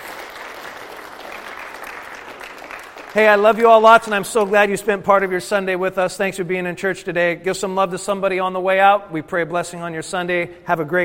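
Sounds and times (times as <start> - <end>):
congregation clapping in church during a Sunday service: 0.0 - 5.0
speech: 3.1 - 11.0.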